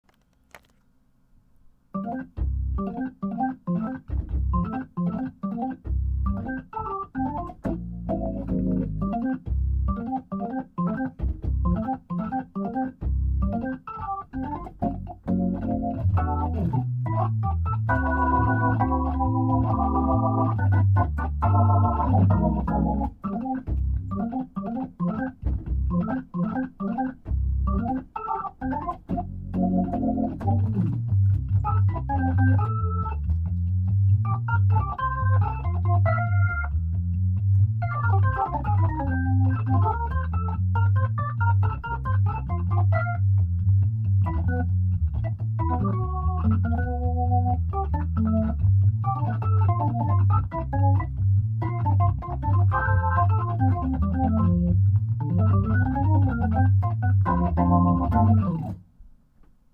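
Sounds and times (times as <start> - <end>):
Hammond piano: 1.9 - 58.8.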